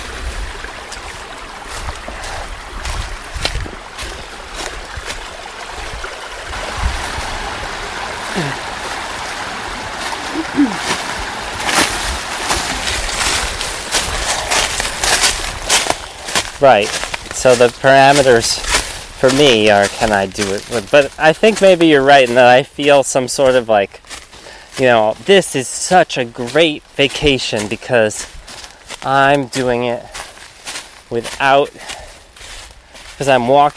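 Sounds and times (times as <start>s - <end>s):
water splashing while wading across a brook: 0.0s - 22.4s
footsteps sloshing through brook water: 0.0s - 33.7s
steady rushing stream: 0.0s - 33.7s
speech: 8.4s - 8.6s, 16.6s - 24.0s, 24.8s - 28.4s, 29.0s - 30.1s, 31.1s - 32.0s, 33.2s - 33.7s.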